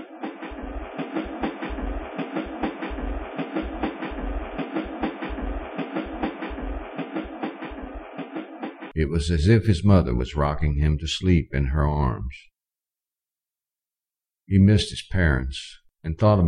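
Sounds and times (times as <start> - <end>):
train car wheels clacking over rail joints: 0.0 - 9.0
speech: 9.0 - 12.5, 14.5 - 16.4.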